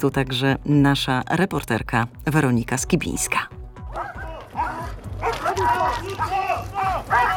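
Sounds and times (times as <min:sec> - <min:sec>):
speech: 0:00.0 - 0:04.2, 0:05.6 - 0:07.3
police patrol dog barking during training exercise on the railway at Łódź Kaliska: 0:03.9 - 0:06.4, 0:07.1 - 0:07.3
voices in background: 0:03.9 - 0:07.3.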